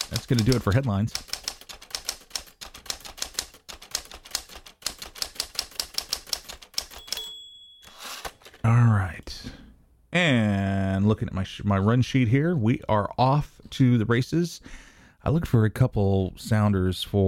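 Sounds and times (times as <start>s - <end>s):
typewriter typing forcefully: 0.0s - 8.6s
speech: 0.3s - 1.4s, 10.2s - 17.2s
typewriter carriage-return bell ding: 6.7s - 8.6s.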